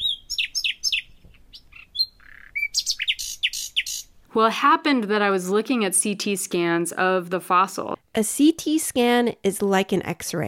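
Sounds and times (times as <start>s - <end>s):
songbird singing: 0.0s - 4.2s
speech: 4.4s - 10.4s.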